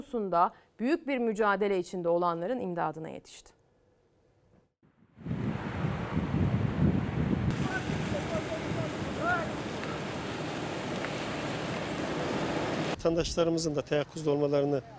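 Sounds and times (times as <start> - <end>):
speech: 0.1 - 3.6, 13.0 - 14.9
strong wind in Gelibolu, Çanakkale, Turkey: 5.0 - 13.0
rain in Gelibolu, Çanakkale, Turkey: 7.5 - 13.0.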